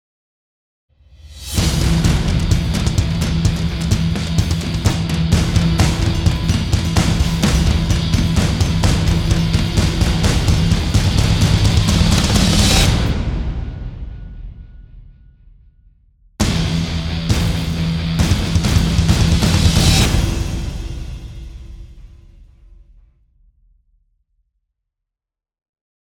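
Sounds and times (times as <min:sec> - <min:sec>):
rock riser with percussion: 0:01.2 - 0:15.1, 0:16.4 - 0:22.8.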